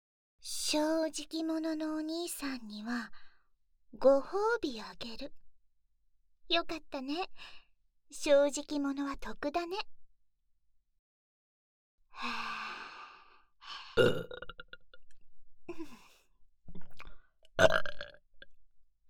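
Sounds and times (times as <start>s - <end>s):
speech: 0.4s - 3.2s, 3.9s - 5.4s, 6.5s - 10.0s, 12.2s - 12.7s, 13.7s - 14.4s, 15.7s - 16.0s, 17.6s - 18.1s
person burping: 14.0s - 15.0s, 17.6s - 18.2s.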